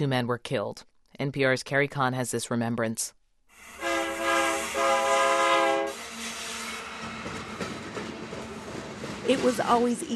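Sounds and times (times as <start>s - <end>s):
speech: 0.0s - 3.8s, 9.3s - 10.1s
freight train horn blasts: 3.7s - 6.9s
freight rail cars rolling along the tracks: 3.8s - 10.1s.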